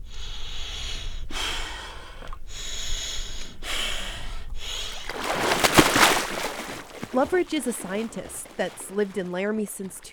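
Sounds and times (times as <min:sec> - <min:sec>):
sharp rapid breathing: 0:00.0 - 0:06.5
faint splashing: 0:01.8 - 0:10.1
speech: 0:07.1 - 0:10.1.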